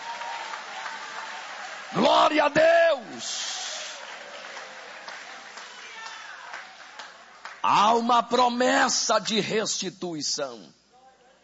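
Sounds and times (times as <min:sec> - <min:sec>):
audience applauding during a sermon: 0:00.0 - 0:08.1
speech: 0:01.9 - 0:03.4, 0:07.7 - 0:10.8.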